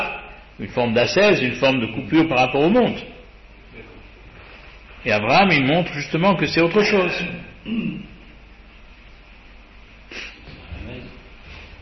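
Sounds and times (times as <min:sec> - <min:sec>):
speech: 0:00.6 - 0:03.2, 0:05.0 - 0:08.1
man coughing: 0:07.6 - 0:08.2.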